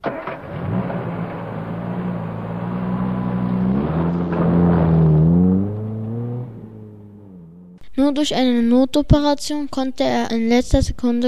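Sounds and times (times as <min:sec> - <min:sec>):
car engine accelerating through the gears: 0:00.0 - 0:07.8
speech: 0:08.1 - 0:11.2.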